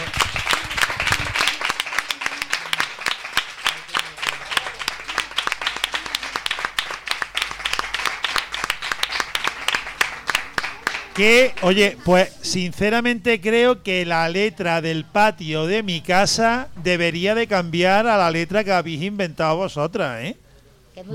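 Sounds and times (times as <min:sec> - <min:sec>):
children applauding at a school event: 0:00.0 - 0:12.0
speech: 0:11.2 - 0:20.4, 0:21.0 - 0:21.1.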